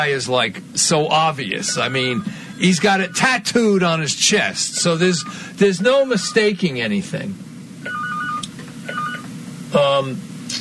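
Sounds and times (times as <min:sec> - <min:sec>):
speech: 0:00.0 - 0:07.5, 0:09.7 - 0:10.6
low hum: 0:00.0 - 0:10.6
electronic phone ringing: 0:01.6 - 0:03.4, 0:05.2 - 0:06.6, 0:07.8 - 0:09.3.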